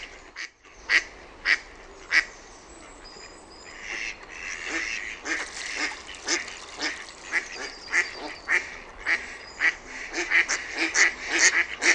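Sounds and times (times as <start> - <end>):
background hiss: 1.0 - 11.5
mallard quacking: 3.8 - 11.9.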